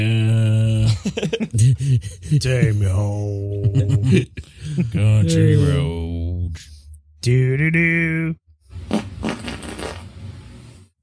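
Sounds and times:
laughter: 0.7 - 5.8
speech: 1.0 - 8.4
sputtering fart: 8.8 - 10.2.

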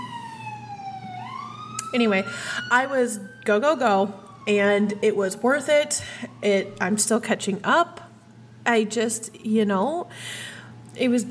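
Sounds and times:
emergency vehicle siren wailing: 0.0 - 6.9
speech: 1.9 - 8.0, 8.7 - 11.2.

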